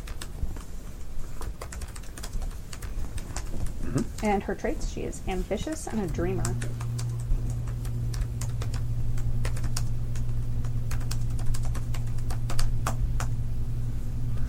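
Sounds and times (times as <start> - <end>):
fast typing on a computer keyboard: 0.0 - 3.7, 6.0 - 8.8, 9.4 - 13.3
steady low hum: 2.2 - 14.4
speech: 3.9 - 6.8.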